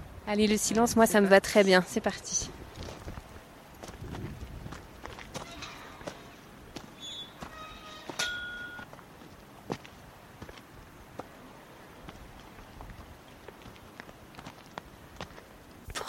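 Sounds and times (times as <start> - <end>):
speech: 0.3 - 2.6
hikers' footsteps crunching on a rocky mountain trail: 2.4 - 15.9
marmots whistling: 7.0 - 8.8.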